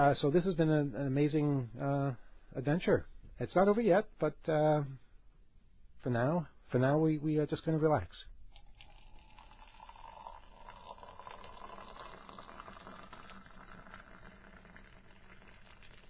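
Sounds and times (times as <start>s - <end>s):
speech: 0.0s - 5.0s, 6.0s - 8.3s
tea pouring into a cup: 8.5s - 16.0s.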